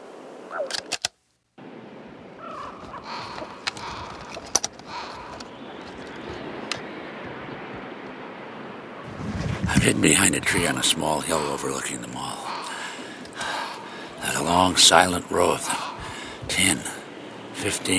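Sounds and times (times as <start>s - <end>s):
outdoor noise: 0.0s - 17.9s
speech: 0.6s - 0.9s, 9.8s - 12.4s, 14.5s - 15.8s, 16.6s - 16.9s, 17.6s - 17.9s
flock of blackbirds cawing and chattering overhead: 2.3s - 7.9s, 10.1s - 17.9s.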